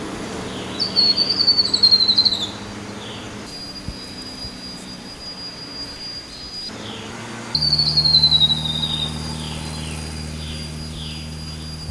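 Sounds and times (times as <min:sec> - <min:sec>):
steady background noise: 0:00.0 - 0:11.8
grey-throated babbler giving high descending trilled calls: 0:00.1 - 0:11.8.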